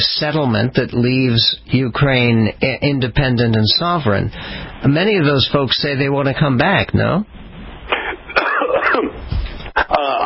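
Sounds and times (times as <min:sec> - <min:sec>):
speech: 0:00.0 - 0:07.4
person coughing: 0:07.9 - 0:09.2
person clearing throat: 0:07.9 - 0:10.2.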